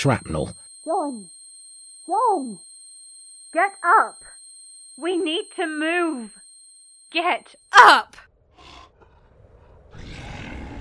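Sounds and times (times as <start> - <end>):
speech: 0.0 - 1.4, 2.1 - 2.7, 3.5 - 4.4, 5.0 - 6.4, 7.1 - 8.8
dragon roaring: 8.5 - 10.8.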